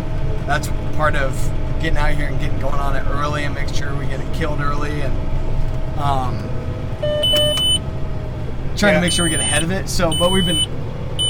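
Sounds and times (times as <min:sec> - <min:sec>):
low steady tractor engine rumble: 0:00.0 - 0:11.2
speech: 0:00.5 - 0:05.4, 0:06.0 - 0:07.7, 0:08.8 - 0:10.8
tractor auto-steer system beeping: 0:07.0 - 0:07.8, 0:09.0 - 0:11.2.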